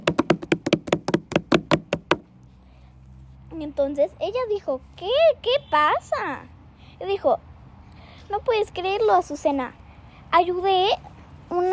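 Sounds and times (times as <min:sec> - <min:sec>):
loud knocks on a house door: 0:00.0 - 0:02.2
speech: 0:03.6 - 0:07.5, 0:08.3 - 0:11.7.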